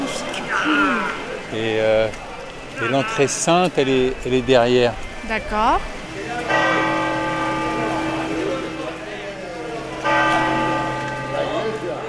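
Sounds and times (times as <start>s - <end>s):
voices: 0.0s - 12.0s
speech: 0.6s - 2.2s, 2.8s - 6.6s
large cathedral bells ringing: 2.7s - 12.0s.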